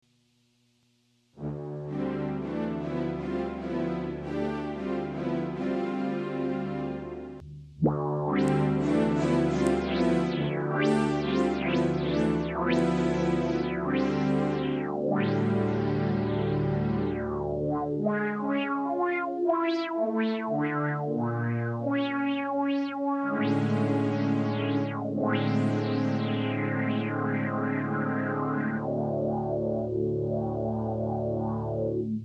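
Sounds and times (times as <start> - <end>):
envelope follower synth strings: 1.4 - 32.2.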